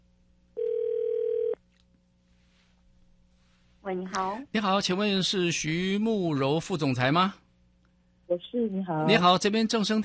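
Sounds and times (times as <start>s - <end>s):
telephone ringback tone as a phone call connects: 0.6s - 1.6s
speech: 3.9s - 7.4s, 8.3s - 10.0s.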